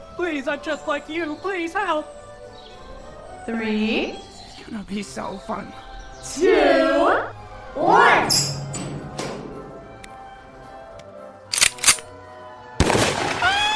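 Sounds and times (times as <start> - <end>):
speech: 0.2 - 2.2, 3.4 - 8.5
gunshots from a real gun: 12.8 - 13.6.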